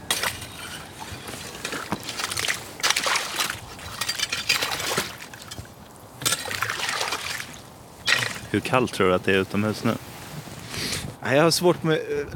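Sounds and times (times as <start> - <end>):
slushy icy water sloshing and trickling in a hole cut in the ice: 0.0 - 8.8
many small ice pieces clinking and crackling on the water surface: 0.1 - 6.7, 8.0 - 8.6
speech: 8.5 - 10.1, 11.2 - 12.3.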